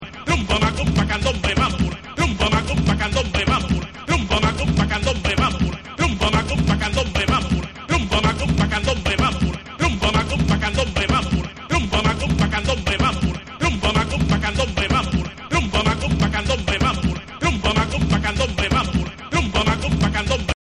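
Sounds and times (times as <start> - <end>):
a cappella singing: 0.0 - 20.6.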